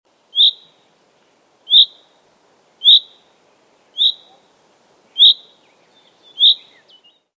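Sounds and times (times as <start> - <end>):
faint low background hiss: 0.1 - 7.3
Common chaffinch Fringilla coelebs calls: 0.3 - 1.0, 1.6 - 2.2, 2.8 - 7.3.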